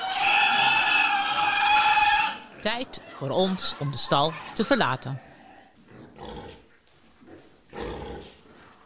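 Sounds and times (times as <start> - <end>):
hungry piglets squealing and fighting in a barn: 0.0 - 5.1
speech: 2.6 - 5.3.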